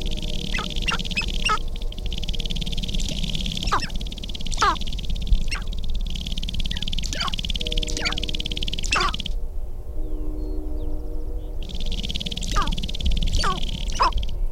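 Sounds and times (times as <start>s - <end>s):
sharp-tailed grouse uttering sharp dropping cackles and clucks: 0.0s - 1.7s, 2.8s - 9.3s, 12.3s - 14.2s
brief tonal hums: 0.0s - 14.3s
steady high hiss: 0.0s - 14.4s.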